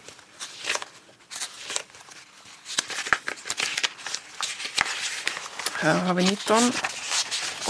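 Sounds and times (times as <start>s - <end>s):
paper rustling and flicking through a pile of sent-in entries: 0.0s - 7.6s
speech: 5.8s - 7.0s.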